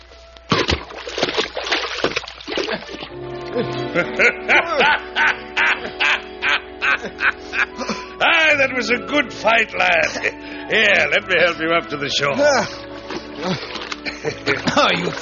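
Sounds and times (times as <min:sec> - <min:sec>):
water churning and sloshing: 0:00.0 - 0:03.2, 0:12.6 - 0:15.2
heavy splash of a person falling into water: 0:00.5 - 0:03.0
laughter: 0:02.6 - 0:08.4, 0:09.9 - 0:10.4, 0:13.4 - 0:15.2
speech: 0:02.7 - 0:05.1, 0:08.6 - 0:12.8, 0:13.4 - 0:15.2.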